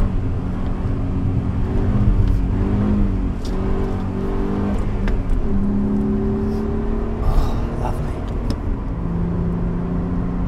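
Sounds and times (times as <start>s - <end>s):
car engine revving through downshifts climbing a hill: 0.0s - 10.4s.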